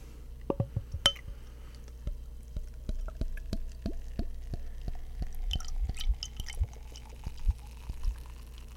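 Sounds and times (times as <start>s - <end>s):
soft drips of beer: 0.9s - 8.7s
faint fizzing crackle of beer: 1.7s - 8.7s
strawberry wheat beer pouring into a glass: 3.0s - 8.7s.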